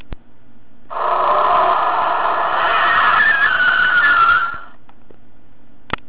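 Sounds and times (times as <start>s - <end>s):
tyres squealing: 0.9s - 4.8s.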